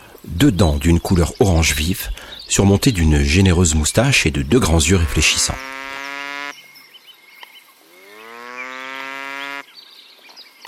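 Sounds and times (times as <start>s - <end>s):
speech: 0.3s - 5.8s
coypu giving engine-like alarm calls at night at a pond: 1.1s - 6.6s, 7.8s - 9.7s.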